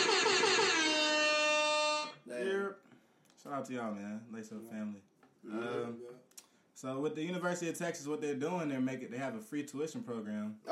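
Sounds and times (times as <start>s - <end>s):
air horn blasts: 0.0s - 2.3s
speech: 2.7s - 10.7s.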